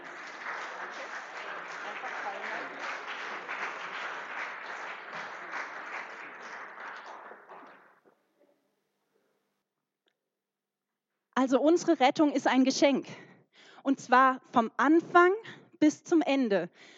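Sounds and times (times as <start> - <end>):
sustained crowd applause: 0.0 - 8.0
speech: 11.4 - 13.2, 13.8 - 16.9.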